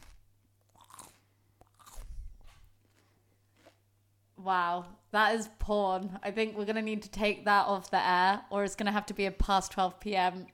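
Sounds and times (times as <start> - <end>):
celery being bitten and chewed at the microphone: 0.0 - 3.8
speech: 4.4 - 10.5.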